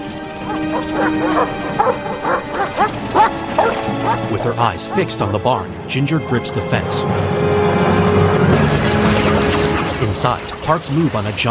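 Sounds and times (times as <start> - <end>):
guard dogs barking at closed barn doors: 0.2 - 5.5
speech: 0.7 - 2.4, 4.2 - 8.8, 10.0 - 11.4.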